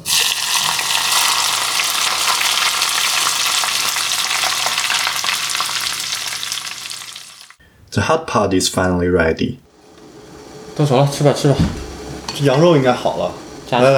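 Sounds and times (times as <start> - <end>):
hot oil poured over chili sizzling while making chili oil: 0.0 - 7.6
speech: 7.9 - 9.7, 10.8 - 11.8, 12.4 - 13.9.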